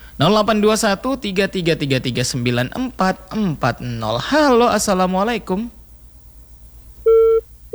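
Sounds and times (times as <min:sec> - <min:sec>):
faint low hum: 0:00.0 - 0:07.7
speech: 0:00.2 - 0:05.8
telephone busy tone after a phone-in call drops: 0:07.0 - 0:07.7.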